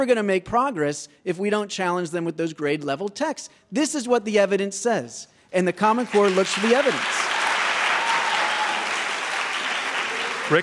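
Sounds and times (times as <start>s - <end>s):
speech: 0.0s - 7.4s, 10.5s - 10.6s
audience applause at a debate: 6.0s - 10.6s.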